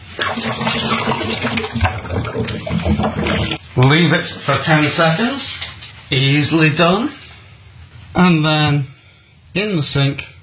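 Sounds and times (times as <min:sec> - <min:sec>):
sterilizing fluid gushing through an upturned brewing dock: 0:00.1 - 0:03.6
speech: 0:03.8 - 0:07.2, 0:08.2 - 0:08.9, 0:09.5 - 0:10.3.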